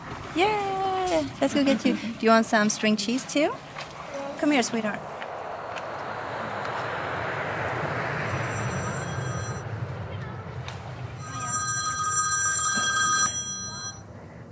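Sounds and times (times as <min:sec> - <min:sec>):
speech: 0:00.4 - 0:03.7, 0:04.4 - 0:05.1
steady roar at an airport: 0:03.0 - 0:14.5
telephone ringing with bright electronic trilling: 0:08.4 - 0:09.6, 0:11.2 - 0:14.0.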